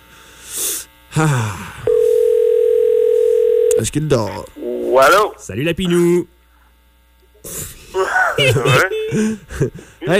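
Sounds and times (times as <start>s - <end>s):
speech: 1.2s - 1.6s, 3.8s - 6.3s, 8.4s - 10.1s
telephone ringing tone while calling someone: 1.9s - 3.8s
laughter: 7.9s - 9.9s.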